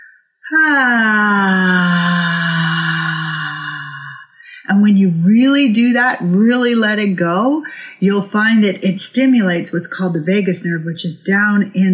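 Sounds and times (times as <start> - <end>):
speech: 0.5 - 1.5, 5.4 - 11.9
deep voiced moan of pleasure on a slow exhale as a breathing exercise: 0.5 - 4.2.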